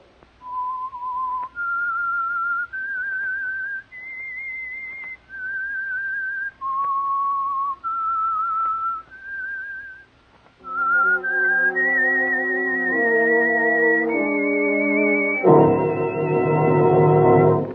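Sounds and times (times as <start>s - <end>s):
lone clear whistled melody for an oil-company-sponsored program: 0.4s - 10.0s, 10.6s - 17.7s
richer instruments playing the tune: 10.6s - 17.7s.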